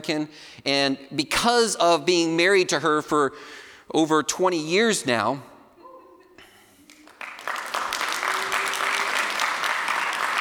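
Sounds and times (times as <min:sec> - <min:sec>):
speech: 0:00.0 - 0:05.5
audience applause: 0:06.9 - 0:10.4.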